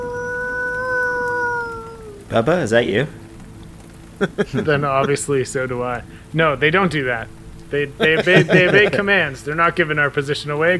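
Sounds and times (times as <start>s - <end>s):
voice imitating the howl of two dire wolves: 0.0s - 2.3s
speech: 2.3s - 3.2s, 4.2s - 10.7s
laughter: 4.2s - 5.3s, 8.0s - 9.3s.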